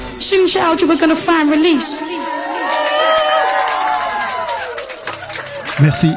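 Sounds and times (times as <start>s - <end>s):
speech: 0.5s - 2.5s, 5.8s - 6.1s
large audience cheering and whooping: 1.8s - 6.1s
audience clapping: 2.4s - 6.1s.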